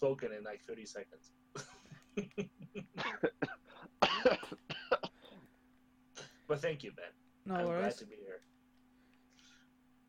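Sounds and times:
speech: 0.0 - 4.5, 6.5 - 8.5
person coughing: 2.8 - 5.4.

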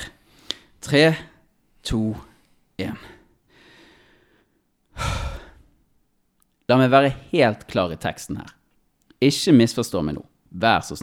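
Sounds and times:
speech: 0.9 - 3.2, 6.7 - 8.6, 9.2 - 11.0
person taking a deep breath to calm down: 2.3 - 5.8.

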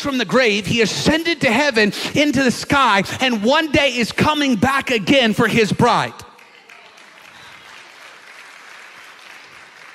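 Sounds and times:
speech: 0.0 - 6.2
audience applause: 6.4 - 9.9.

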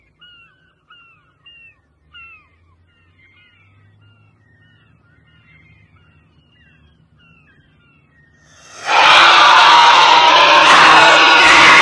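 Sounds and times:
man's piercing inhuman shriek: 8.6 - 11.8.

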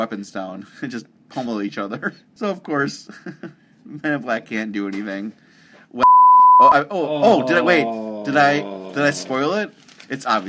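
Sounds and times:
speech: 0.0 - 10.4
censor bleep: 6.0 - 6.9.

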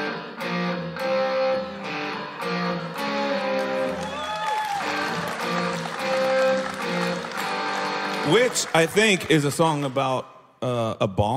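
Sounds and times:
electric guitar riff with heavy distortion: 0.0 - 4.0, 4.9 - 8.3
speech: 8.3 - 11.3.

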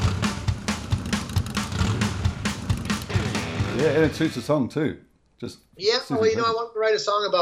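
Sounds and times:
motorcycle exhaust revving: 0.0 - 4.0
speech: 3.8 - 7.4.

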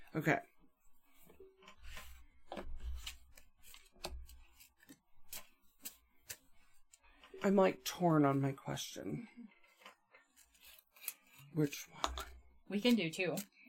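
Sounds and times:
speech: 0.1 - 0.5, 7.4 - 9.6, 11.6 - 12.1, 12.7 - 13.6
deck of cards shuffling: 1.1 - 7.6, 9.6 - 13.6.

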